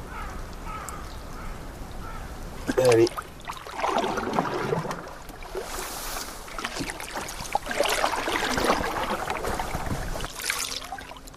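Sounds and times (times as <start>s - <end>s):
crows cawing: 0.0s - 2.3s
running water from a current: 2.3s - 11.3s
speech: 2.8s - 3.2s.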